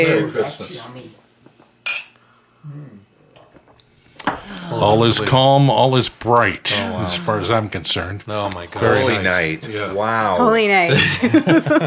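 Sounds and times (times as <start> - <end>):
glasses clinking in a Christmas toast: 0.0 - 0.6, 1.8 - 2.2
speech: 0.0 - 1.2, 4.5 - 11.8
soft low voice murmuring: 6.7 - 7.6
laughter: 10.9 - 11.8.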